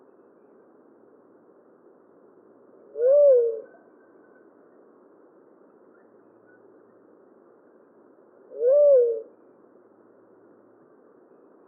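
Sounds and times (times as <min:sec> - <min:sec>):
Tolima dove Leptotila conoveri cooing: 0:02.9 - 0:03.7, 0:08.5 - 0:09.3.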